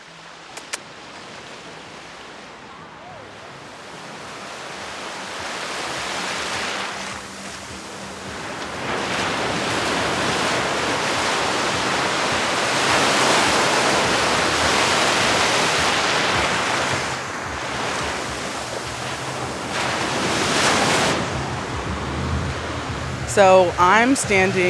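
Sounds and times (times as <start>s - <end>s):
ocean waves crashing at the shore: 0.0s - 24.6s
wind noise: 3.9s - 24.6s
speech: 23.4s - 24.6s.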